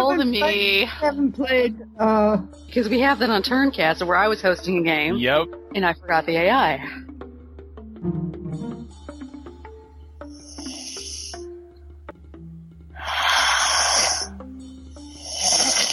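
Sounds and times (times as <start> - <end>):
speech: 0.2 - 7.1, 8.0 - 8.2
person snoring with rattling inhales: 10.3 - 11.4, 13.0 - 14.4, 15.0 - 15.9.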